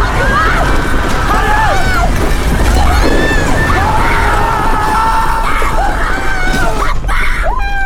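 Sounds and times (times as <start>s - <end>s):
dense crowd screaming in panic: 0.0s - 7.8s
constant roar of commotion: 2.4s - 6.4s.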